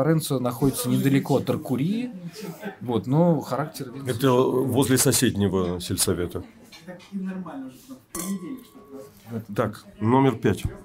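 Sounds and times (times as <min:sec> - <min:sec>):
speech: 0:00.0 - 0:10.8
wine glasses clinking at a wine tasting: 0:08.1 - 0:09.6.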